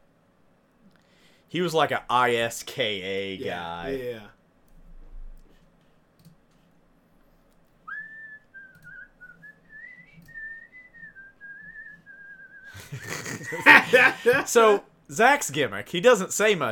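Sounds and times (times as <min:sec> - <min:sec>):
faint noise: 0:00.0 - 0:16.7
speech: 0:01.5 - 0:04.4, 0:13.5 - 0:16.7
soft clicks: 0:04.6 - 0:06.7, 0:07.4 - 0:07.8, 0:08.6 - 0:09.0, 0:10.1 - 0:10.4
person whistling a wavering wrestler's entrance theme melody: 0:07.9 - 0:12.8
laughter: 0:12.7 - 0:14.8.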